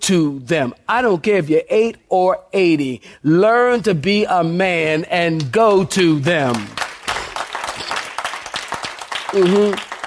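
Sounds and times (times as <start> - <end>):
speech: 0.1 - 6.8, 9.3 - 9.9
scattered uneven applause from a crowd: 6.5 - 10.0.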